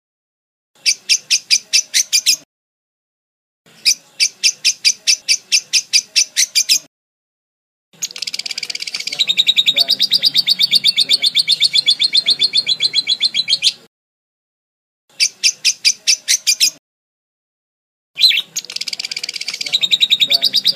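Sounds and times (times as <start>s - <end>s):
lovebird chattering: 0.8s - 2.4s, 3.8s - 6.9s, 8.0s - 13.9s, 15.1s - 16.8s, 18.2s - 20.7s.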